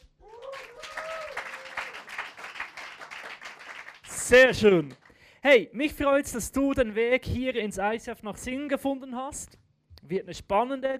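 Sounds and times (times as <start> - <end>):
roomful of people clapping: 0.0 - 5.3
rising whoop or cheer: 0.2 - 2.1
speech: 4.3 - 10.9.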